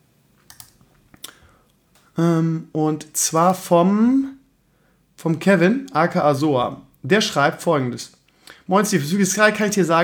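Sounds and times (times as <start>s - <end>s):
faint typing on a computer: 0.4s - 0.8s
speech: 2.2s - 4.4s, 5.2s - 10.0s.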